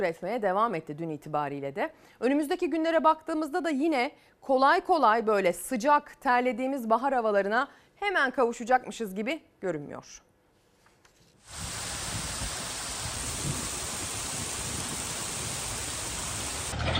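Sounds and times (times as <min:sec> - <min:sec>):
speech: 0:00.0 - 0:10.3
heavy rain: 0:11.5 - 0:16.8
rushing floodwater from a swollen creek: 0:11.5 - 0:16.8.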